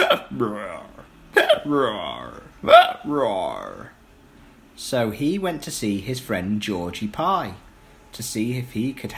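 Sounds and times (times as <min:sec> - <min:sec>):
performed hiccups with a drawn-out voiced sound: 0:00.0 - 0:03.3
speech: 0:00.4 - 0:04.0, 0:04.8 - 0:09.1.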